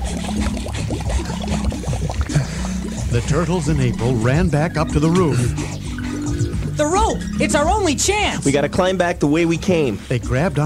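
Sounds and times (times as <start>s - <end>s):
water pouring and gushing into a flooding building: 0.0s - 4.4s
speech: 3.1s - 5.6s, 6.8s - 10.6s.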